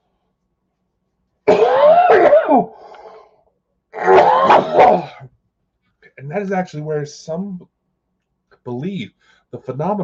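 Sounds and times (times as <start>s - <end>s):
person coughing: 1.5s - 2.7s, 4.0s - 5.3s
speech: 6.2s - 7.8s, 8.6s - 10.0s.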